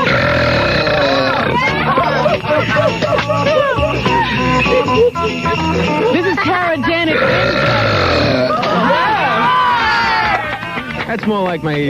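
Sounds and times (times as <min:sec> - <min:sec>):
long loud croaky belch: 0:00.0 - 0:01.8, 0:07.1 - 0:09.0
crowd chatter: 0:01.1 - 0:11.1
laughter: 0:01.3 - 0:06.7, 0:07.8 - 0:11.1
speech: 0:11.1 - 0:11.8.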